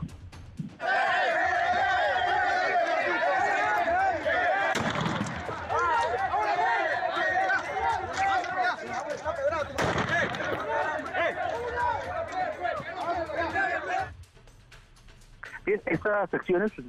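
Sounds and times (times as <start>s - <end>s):
dense continuous crowd chatter and shouting: 0.8s - 14.2s
loud gunshots: 4.7s - 5.6s, 9.7s - 10.8s
speech: 16.0s - 16.8s.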